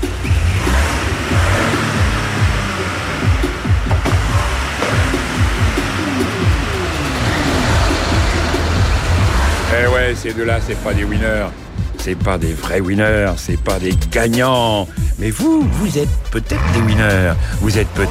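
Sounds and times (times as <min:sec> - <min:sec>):
small car engine sputtering: 0:00.0 - 0:18.1
speech: 0:10.1 - 0:18.1.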